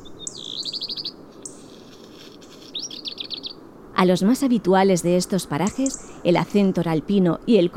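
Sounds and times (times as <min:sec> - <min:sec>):
small mountain birds trilling on rocky cliff: 0:00.0 - 0:03.7, 0:05.6 - 0:06.3
speech: 0:04.0 - 0:07.7.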